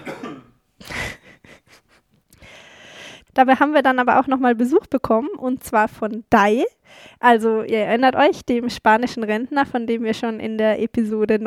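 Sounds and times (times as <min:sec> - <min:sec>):
person coughing: 0:00.0 - 0:01.7
speech: 0:03.4 - 0:11.4.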